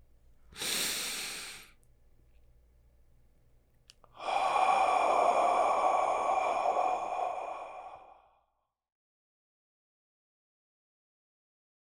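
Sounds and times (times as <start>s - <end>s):
person breathing in: 0.6s - 1.8s, 4.1s - 8.4s
person exhaling: 0.6s - 1.8s, 4.2s - 8.4s.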